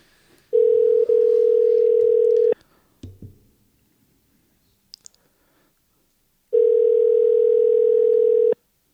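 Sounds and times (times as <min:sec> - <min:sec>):
phone ringing out on a cold call: 0:00.5 - 0:02.6, 0:06.5 - 0:08.6.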